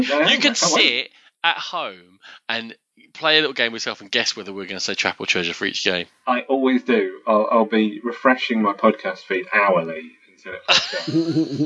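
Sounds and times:
sharp sneeze: 0:00.0 - 0:00.8
laughter: 0:00.0 - 0:11.6
speech: 0:00.0 - 0:11.6
brief inhale: 0:02.2 - 0:02.5.

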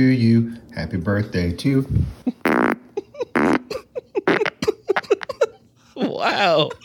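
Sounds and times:
speech: 0:00.0 - 0:02.7, 0:06.2 - 0:06.8
fart: 0:02.4 - 0:03.7, 0:04.3 - 0:04.6.

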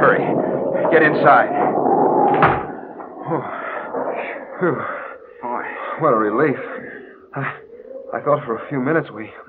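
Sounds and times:
wooden door swinging open with a creak: 0:00.0 - 0:05.1
steady rushing wind: 0:00.0 - 0:06.1
wooden door bumping shut: 0:00.8 - 0:03.0
speech: 0:00.9 - 0:01.8, 0:03.3 - 0:03.6, 0:04.6 - 0:05.0, 0:06.0 - 0:06.8, 0:07.4 - 0:09.4.

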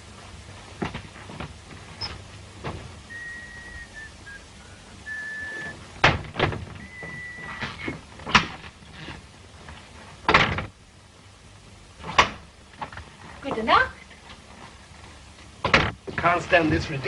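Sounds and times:
door creaking open with a faint squeal: 0:02.0 - 0:03.8, 0:05.1 - 0:08.7
door clunks and latch knocks: 0:10.3 - 0:10.7, 0:15.6 - 0:16.0
speech: 0:16.4 - 0:17.0.

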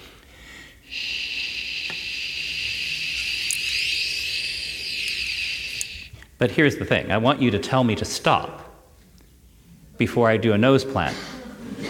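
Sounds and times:
voiced shh hiss by person walking toward wall: 0:00.8 - 0:06.2
speech: 0:06.4 - 0:08.7, 0:10.0 - 0:11.4.

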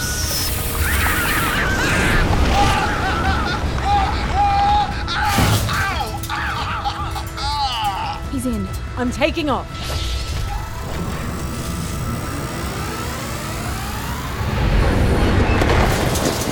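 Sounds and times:
constant roaring hissing din: 0:00.0 - 0:08.3, 0:10.1 - 0:15.4
laughter: 0:00.8 - 0:08.7
compressed air cylinder valve shattered with a fire axe: 0:05.2 - 0:06.5
speech: 0:09.0 - 0:10.0.

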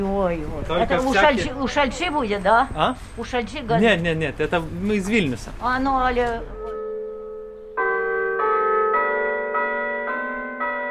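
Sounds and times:
speech: 0:00.0 - 0:06.6
church bells ringing: 0:06.2 - 0:10.8.

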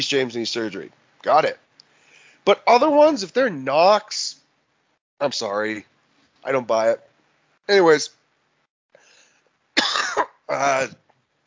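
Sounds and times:
speech: 0:00.0 - 0:01.6, 0:02.4 - 0:04.4, 0:05.2 - 0:07.1, 0:07.7 - 0:08.2, 0:10.5 - 0:11.0
person coughing: 0:09.8 - 0:11.0.

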